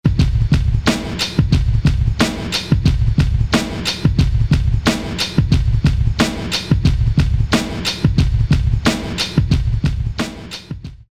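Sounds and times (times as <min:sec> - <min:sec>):
drum machine beat: 0:00.0 - 0:11.1.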